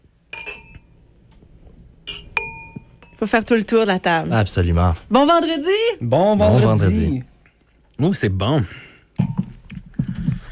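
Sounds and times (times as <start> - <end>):
glasses clinking in a toast: 0.3 - 0.9, 2.1 - 3.2
speech: 3.2 - 7.3, 8.0 - 8.8.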